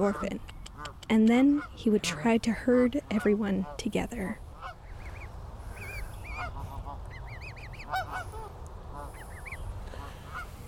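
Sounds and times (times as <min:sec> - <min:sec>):
speech: 0:00.0 - 0:04.4
steady rumbling outdoor background: 0:00.0 - 0:10.6
flock of geese honking: 0:03.1 - 0:10.6.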